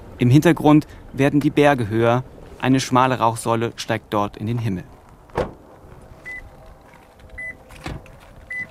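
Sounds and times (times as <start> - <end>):
speech: 0.2 - 5.0
car door thudding open: 5.3 - 6.6, 7.3 - 8.6
car electronic warning chime beeping: 8.5 - 8.6.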